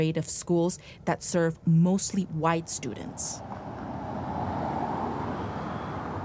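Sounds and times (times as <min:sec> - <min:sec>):
speech: 0:00.0 - 0:03.7
busy road traffic roaring: 0:02.0 - 0:06.2
heavy port trucks rumbling past: 0:02.6 - 0:06.2.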